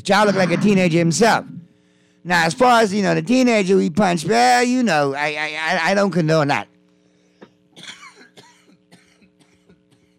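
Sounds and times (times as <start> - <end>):
speech: 0.0 - 1.6, 2.2 - 6.7
faint constant hum: 0.0 - 10.1
raspy coughs: 7.7 - 10.1.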